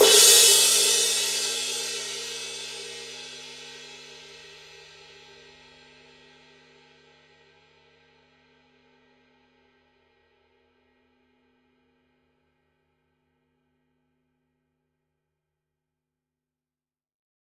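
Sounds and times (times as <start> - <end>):
Signature Precision 20 ride cymbal edge: 0.0 - 3.4.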